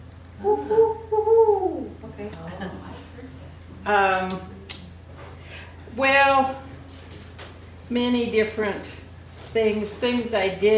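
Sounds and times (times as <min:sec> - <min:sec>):
low steady hum: 0:00.0 - 0:10.7
person's voice imitating a barred owl call: 0:00.4 - 0:02.2
speech: 0:03.9 - 0:04.5, 0:06.0 - 0:06.6, 0:07.9 - 0:10.7.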